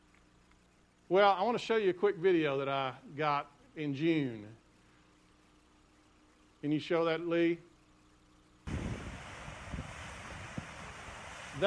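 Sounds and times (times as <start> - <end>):
speech: 1.1 - 4.6, 6.6 - 7.7
water rushing over a lake spillway: 8.7 - 11.6
wind buffeting: 8.7 - 11.6.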